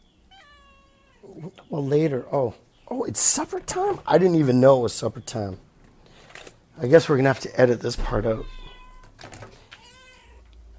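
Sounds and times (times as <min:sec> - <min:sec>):
cat meowing: 0:00.3 - 0:01.4, 0:08.3 - 0:10.5
speech: 0:01.4 - 0:05.7, 0:06.8 - 0:08.6.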